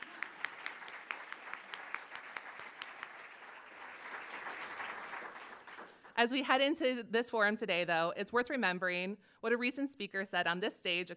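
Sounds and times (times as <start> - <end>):
audience applause: 0.0 - 6.1
speech: 6.2 - 11.1.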